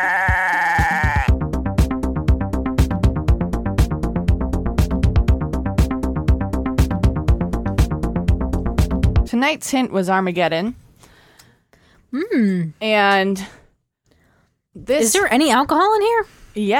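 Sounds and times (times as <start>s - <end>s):
goat bleating: 0.0s - 1.3s
rhythmic punchy beats with tonal music backing: 0.0s - 9.3s
speech: 9.4s - 10.8s, 12.1s - 13.6s, 14.8s - 16.7s.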